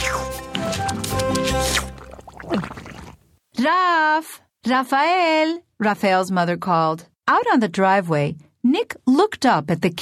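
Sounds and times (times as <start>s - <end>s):
lively music: 0.0s - 2.1s
salsa being mashed with wet squelching: 0.0s - 3.3s
salsa liquid splashes: 0.0s - 3.3s
speech: 3.6s - 9.9s.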